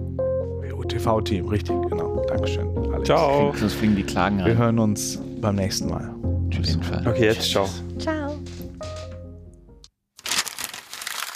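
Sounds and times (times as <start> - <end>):
speech: 0.9 - 8.2
beer being opened: 10.2 - 11.3.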